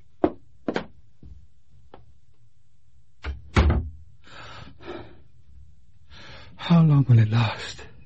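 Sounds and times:
door thudding shut: 3.2 - 4.0
speech: 6.8 - 7.9.

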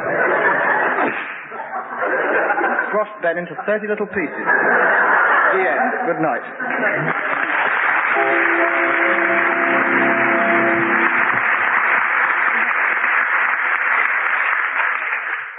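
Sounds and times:
laughter: 0.0 - 11.3
speech: 2.9 - 7.3, 8.2 - 11.3
audience applause: 6.6 - 15.5.

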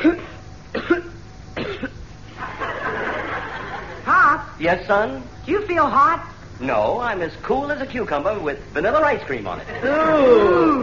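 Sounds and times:
person coughing: 0.0 - 2.0
laughter: 2.3 - 4.1, 9.6 - 10.8
speech: 4.6 - 10.8.

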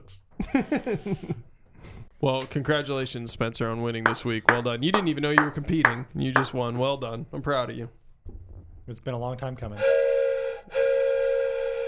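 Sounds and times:
speech: 0.1 - 1.5, 2.2 - 8.0, 8.9 - 10.8
laughter: 0.4 - 1.5
voice imitating the whistle of a train coming to a stop: 9.8 - 11.8.

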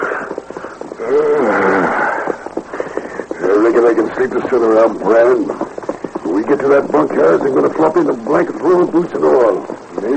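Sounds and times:
horses' hooves clip-clopping: 0.0 - 10.1
speech: 3.8 - 5.6, 6.5 - 9.4.

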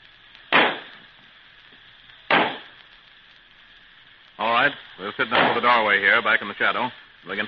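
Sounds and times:
Roman candle firework bangs: 0.0 - 3.0, 5.2 - 6.0
Roman candle firework sizzling hiss: 0.0 - 7.4
speech: 4.6 - 7.4.

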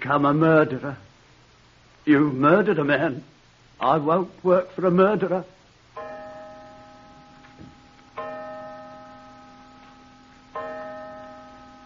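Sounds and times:
speech: 0.0 - 1.1, 2.1 - 5.6
clock striking the hour with deep ringing chimes: 6.0 - 11.8.

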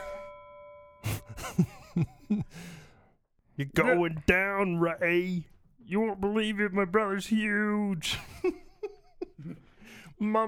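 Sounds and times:
boxing-match bell ringing: 0.0 - 1.9
speech: 1.6 - 2.8, 3.6 - 8.6, 10.2 - 10.4.

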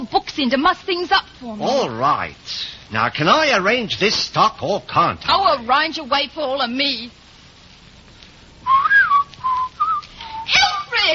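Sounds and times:
speech: 0.4 - 7.2
person whistling a short wavering tune: 8.7 - 10.5.

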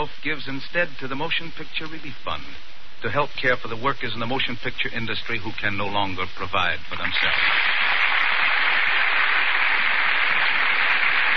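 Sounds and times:
speech: 0.0 - 7.9
theater audience applause: 7.2 - 11.3.

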